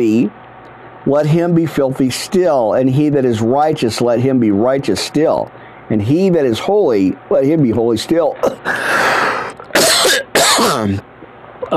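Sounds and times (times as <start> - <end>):
speech: 0.0 - 0.4, 1.0 - 8.9, 10.6 - 11.1
harsh coughs with throat clearing: 8.4 - 11.0.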